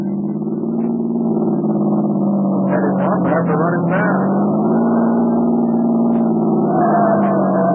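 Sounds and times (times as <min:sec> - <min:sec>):
car engine revving as the car swerves leaving an airfield: 0:00.0 - 0:07.7
speech: 0:03.3 - 0:04.6.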